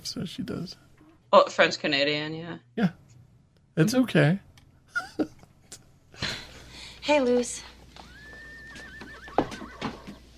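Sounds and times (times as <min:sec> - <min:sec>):
speech: 0:00.0 - 0:03.0, 0:03.8 - 0:05.3, 0:07.1 - 0:07.7
faint steady tone: 0:00.0 - 0:10.3
horse hooves clip-clopping: 0:07.8 - 0:10.3
horse neighing in a shrill whinny: 0:08.0 - 0:10.2.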